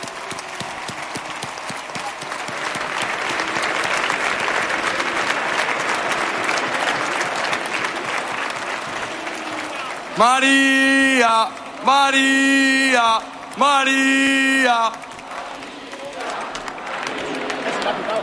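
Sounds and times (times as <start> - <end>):
faint crowd murmur: 0.0 - 10.7, 14.7 - 18.2
large audience applause: 0.0 - 18.2
laughter: 0.0 - 18.2
speech: 10.2 - 15.0.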